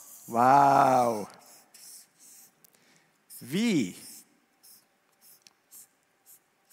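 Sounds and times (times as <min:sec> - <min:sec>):
blue marker pen squeaking across a board: 0:00.0 - 0:00.4, 0:01.0 - 0:02.6, 0:03.3 - 0:06.7
speech: 0:00.3 - 0:01.4, 0:03.4 - 0:04.0.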